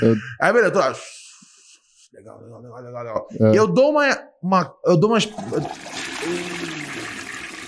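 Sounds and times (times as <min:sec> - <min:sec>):
speech: 0:00.0 - 0:01.2, 0:02.1 - 0:07.2
toilet flushing with a loud rush of water: 0:05.3 - 0:07.6.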